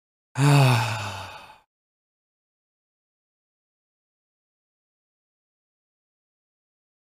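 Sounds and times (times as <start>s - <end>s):
person sighing: 0.4s - 1.7s.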